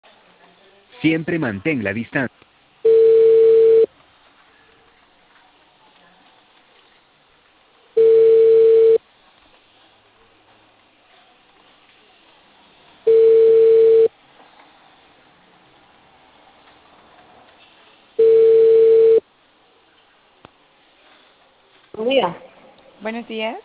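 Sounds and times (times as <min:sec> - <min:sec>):
speech: 0:01.0 - 0:02.4, 0:23.2 - 0:23.6
telephone ringback tones while a cable company places a call: 0:02.9 - 0:03.9, 0:08.0 - 0:09.0, 0:13.1 - 0:14.1, 0:18.2 - 0:19.2.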